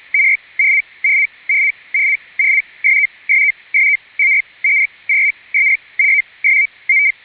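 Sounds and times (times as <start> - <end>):
SITOR-A radio teletype signal in ISS mode sending ATU-80 traffic: 0.1 - 7.2.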